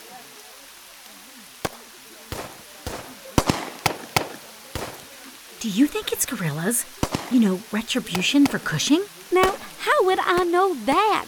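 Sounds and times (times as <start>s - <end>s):
faint noise: 0.0s - 11.2s
pistol shots from the hills: 1.6s - 9.8s
speech: 5.6s - 11.2s.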